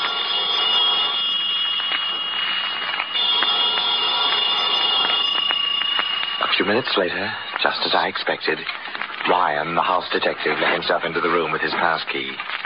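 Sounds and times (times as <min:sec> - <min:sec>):
hotel room telephone ringing with metallic jangle: 0:00.0 - 0:08.2
speech: 0:06.7 - 0:12.6.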